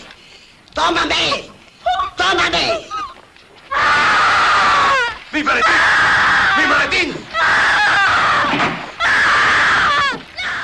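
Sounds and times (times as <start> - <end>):
speech: 0.8 - 1.5, 2.3 - 2.9, 5.4 - 6.0
woman screaming hysterically: 3.7 - 10.6.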